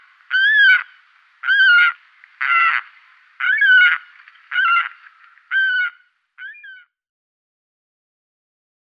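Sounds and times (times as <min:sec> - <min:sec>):
Saker falcon giving harsh nasal squealing calls: 0:00.3 - 0:02.8, 0:03.4 - 0:06.9.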